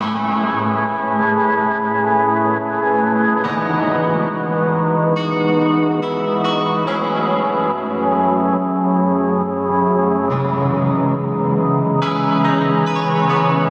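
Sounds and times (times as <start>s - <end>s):
guitar synth in C minor: 0.0s - 13.6s.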